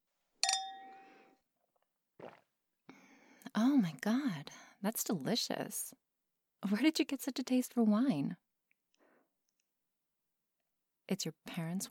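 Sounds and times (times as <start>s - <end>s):
wine glasses clinking in a toast: 0.4s - 1.2s
speech: 3.6s - 6.0s, 6.6s - 8.4s, 11.1s - 11.8s.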